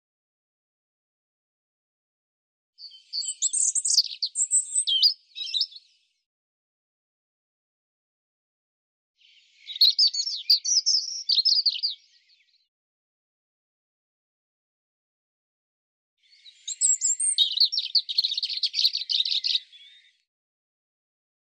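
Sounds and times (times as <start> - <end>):
European robin singing: 2.8 - 6.0, 9.2 - 12.7, 16.2 - 20.3.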